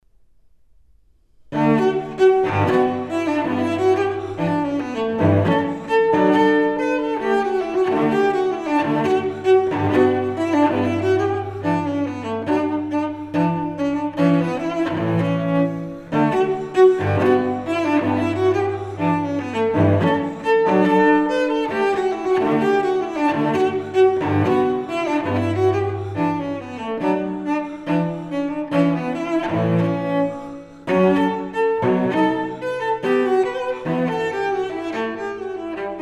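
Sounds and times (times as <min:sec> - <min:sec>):
solo cello suite: 0:01.4 - 0:36.0.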